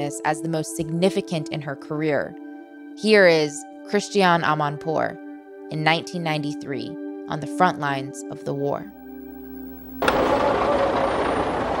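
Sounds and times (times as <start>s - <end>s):
speech: 0.0s - 2.4s, 3.0s - 9.0s
brief steady hum: 8.9s - 10.4s
engines of covered trucks carrying refugees in Bosnia rumbling: 9.9s - 11.7s.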